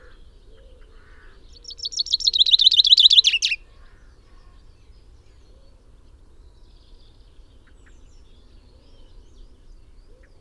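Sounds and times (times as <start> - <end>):
common chaffinch Fringilla coelebs singing: 1.6 - 3.6.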